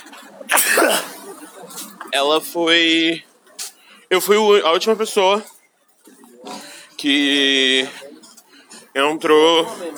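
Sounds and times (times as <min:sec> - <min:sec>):
person sneezing: 0:00.5 - 0:01.2
speech: 0:02.1 - 0:03.3, 0:04.1 - 0:05.5, 0:07.0 - 0:08.0, 0:09.0 - 0:09.9.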